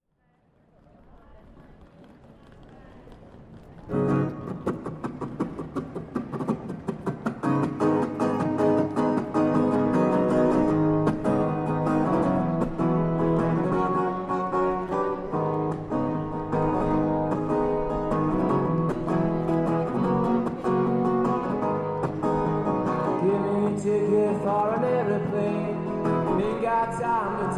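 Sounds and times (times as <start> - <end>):
street music in Glasgow: 3.8 - 27.5.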